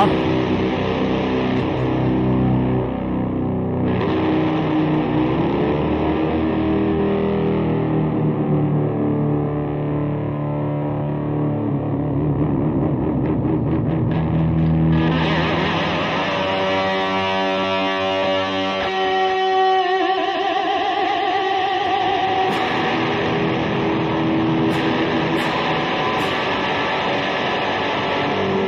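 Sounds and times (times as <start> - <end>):
heavily distorted electric guitar through a distortion pedal playing chords and riffs: 0.0 - 28.6.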